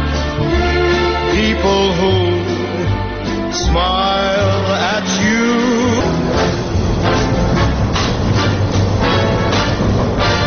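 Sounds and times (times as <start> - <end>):
elevated commuter train rumbling on elevated tracks in Chicago: 0.0 - 10.4
clatter and screech from the rails: 3.8 - 10.4.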